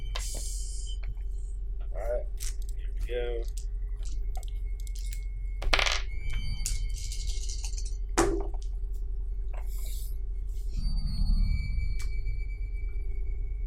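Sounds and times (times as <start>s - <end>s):
steady low hum: 0.0s - 13.6s
dice tumbling across a hard tabletop for a game: 3.4s - 8.7s.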